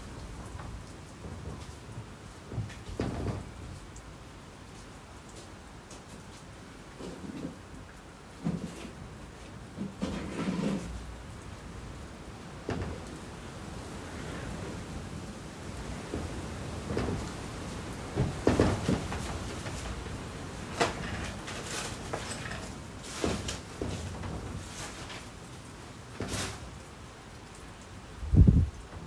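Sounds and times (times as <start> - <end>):
rain falling under the eaves: 0.0 - 29.0
heavy drips and knocks: 0.2 - 4.1, 6.9 - 29.0.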